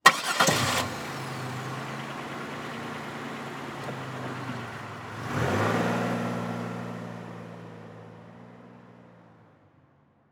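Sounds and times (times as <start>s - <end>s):
Monte Carlo car engine starting: 0.0s - 8.2s.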